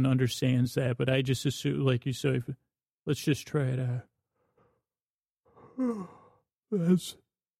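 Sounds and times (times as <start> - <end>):
speech: 0.0 - 4.1, 5.8 - 7.2
person yawning: 5.6 - 7.0.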